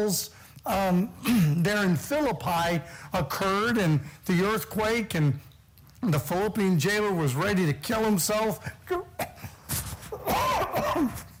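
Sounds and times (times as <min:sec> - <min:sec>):
speech: 0:00.0 - 0:09.0
person coughing: 0:08.9 - 0:11.3.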